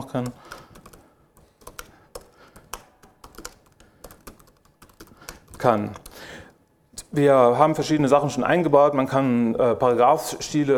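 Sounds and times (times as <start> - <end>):
computer keyboard typing into a text document in a web browser: 0.0 - 6.6
speech: 0.1 - 0.6, 5.6 - 6.4, 7.1 - 10.7.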